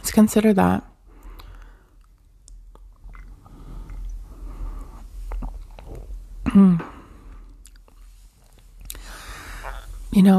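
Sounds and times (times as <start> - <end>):
speech: 0.2 - 0.9, 6.6 - 6.9, 10.2 - 10.3
breaths: 1.1 - 2.0, 3.4 - 5.2, 8.9 - 10.0
soft mouth noises: 1.2 - 10.2.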